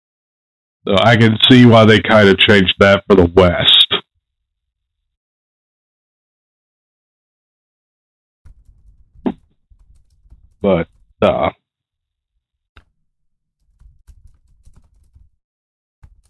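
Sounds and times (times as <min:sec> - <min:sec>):
speech: 0:00.8 - 0:03.8, 0:10.6 - 0:11.6
voice-like bursts: 0:00.9 - 0:04.0, 0:10.6 - 0:11.6
typing on a computer keyboard: 0:08.5 - 0:11.1, 0:13.6 - 0:15.4, 0:16.0 - 0:16.2.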